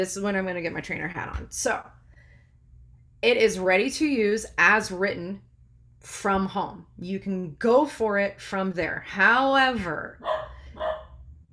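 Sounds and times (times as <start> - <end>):
speech: 0.0 - 2.0, 3.2 - 10.9
low hum: 0.0 - 11.5
small dog barking: 10.2 - 11.2.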